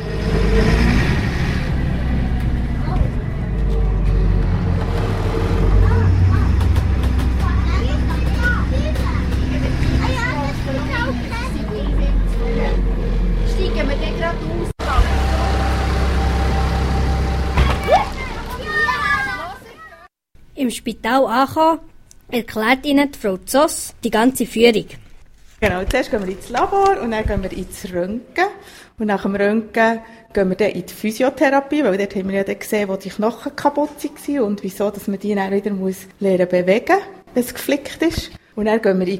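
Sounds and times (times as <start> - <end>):
bus engine rumbling at a busy station: 0.0 - 20.0, 25.6 - 28.0
children chattering: 5.6 - 16.0, 17.5 - 20.1
speech: 20.7 - 25.0, 25.6 - 39.1.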